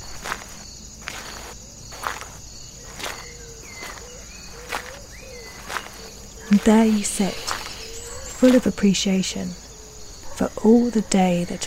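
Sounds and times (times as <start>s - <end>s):
footsteps crunching while climbing a hill outdoors: 0.0s - 10.9s
insects chirring: 0.0s - 11.6s
short chirping calls: 1.2s - 10.4s
speech: 6.5s - 7.5s, 8.4s - 9.6s, 10.4s - 11.6s.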